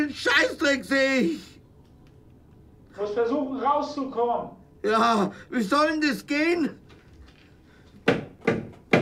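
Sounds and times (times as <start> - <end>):
speech: 0.0 - 1.5, 3.0 - 6.8
knocking on a door: 8.0 - 9.0.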